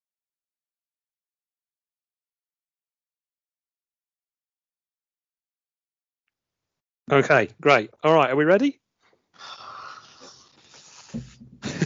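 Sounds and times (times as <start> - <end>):
speech: 7.1 - 8.8
dog yawning: 9.4 - 11.3
laughter: 11.5 - 11.8.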